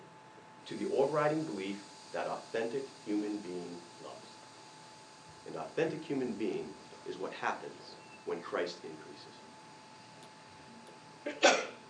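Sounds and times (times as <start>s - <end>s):
speech: 0.7s - 4.2s, 5.5s - 9.4s, 11.3s - 11.7s
person sneezing during a church sermon: 11.3s - 11.8s.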